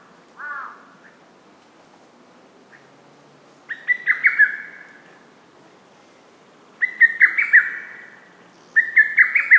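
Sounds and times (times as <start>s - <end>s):
lesser cuckoo song of quick sharp notes: 3.7s - 5.2s, 6.8s - 9.5s.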